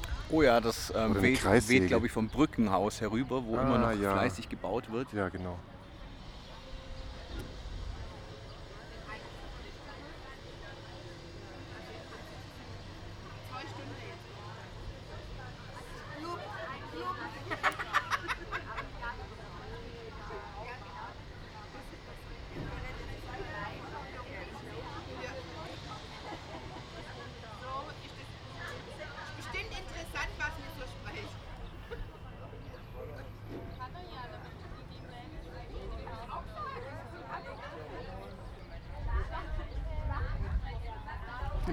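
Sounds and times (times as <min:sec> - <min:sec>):
faint voices murmuring: 0:00.0 - 0:41.7
passenger boat engine rumble while docking: 0:00.0 - 0:41.7
speech: 0:00.3 - 0:05.7
laughter: 0:10.4 - 0:33.6, 0:41.4 - 0:41.7.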